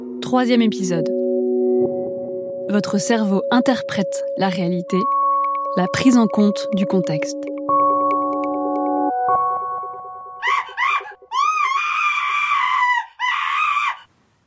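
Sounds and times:
droning chord: 0.0 - 2.8, 6.6 - 10.4
speech: 0.2 - 1.2, 2.7 - 5.2, 5.8 - 7.5
person screaming loud and shrill: 10.4 - 14.1.

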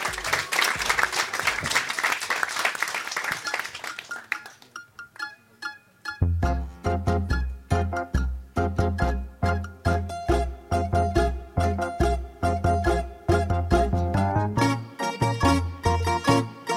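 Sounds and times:
live crowd applauding: 0.0 - 4.8
rhythmic song with a punchy beat: 6.0 - 16.7.

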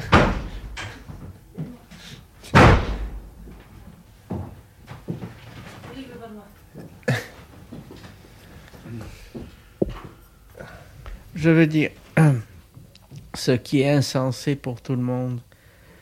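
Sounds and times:
door pushed shut with a loud thud: 0.0 - 1.0, 2.5 - 3.4
speech: 11.4 - 12.0, 13.5 - 15.5.

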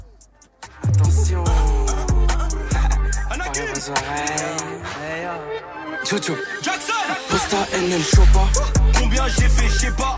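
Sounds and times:
rap track playing loudly: 0.0 - 10.1
deep booming bass: 0.8 - 4.3, 8.2 - 10.1
speech: 3.8 - 10.1.

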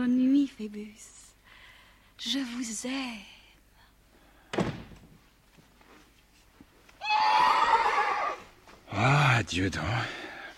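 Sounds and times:
speech: 0.6 - 1.2, 2.2 - 3.4, 8.9 - 10.2
mare neighing: 7.0 - 8.5.

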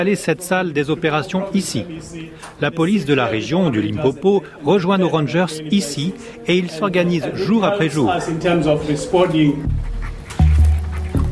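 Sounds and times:
speech: 0.0 - 9.9
trained tracking dog panting and whimpering: 8.1 - 11.2.

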